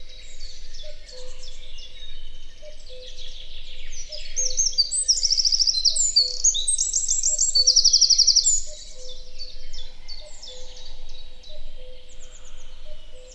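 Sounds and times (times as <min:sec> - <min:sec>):
Eurasian wren Troglodytes troglodytes singing: 0:00.0 - 0:13.3.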